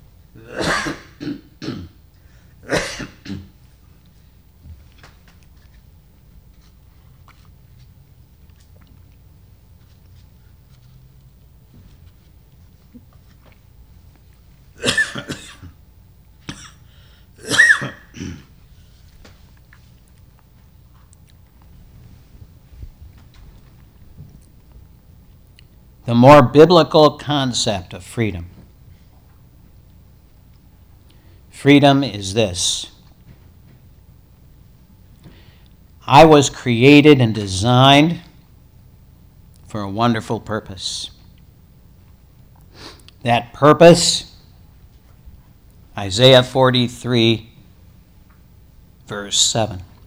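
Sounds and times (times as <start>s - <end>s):
person clearing throat: 0.4s - 2.0s, 2.6s - 3.6s, 14.8s - 15.8s, 16.4s - 18.6s
person coughing in harsh bursts: 0.4s - 2.0s, 2.6s - 3.6s, 14.8s - 15.8s, 16.4s - 18.6s
speech: 26.1s - 28.6s, 31.6s - 32.9s, 36.1s - 38.3s, 39.7s - 41.2s, 43.2s - 44.3s, 46.0s - 47.5s, 49.1s - 49.9s.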